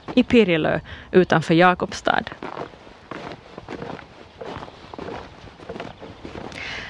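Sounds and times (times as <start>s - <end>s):
footsteps walking on old stone foundations outdoors: 0.0s - 0.4s, 2.2s - 6.8s
speech: 0.2s - 2.8s.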